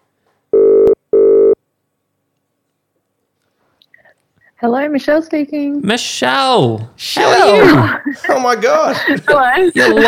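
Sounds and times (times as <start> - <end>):
outgoing telephone call ringing with two steady electronic tones: 0.5 - 1.6
speech: 4.6 - 10.0
laughter: 7.3 - 10.0.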